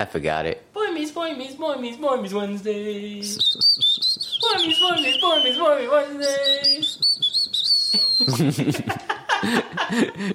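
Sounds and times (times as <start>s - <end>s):
speech: 0.0s - 7.0s, 8.2s - 10.3s
person whistling a jaunty jingle: 3.2s - 8.5s
laughter: 8.0s - 10.3s.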